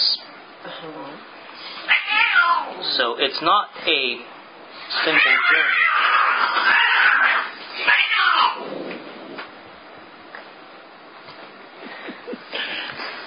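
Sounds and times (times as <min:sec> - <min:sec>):
cat yowling in drawn-out wavering cries: 0:01.8 - 0:02.8, 0:05.0 - 0:08.6
speech: 0:03.0 - 0:06.8.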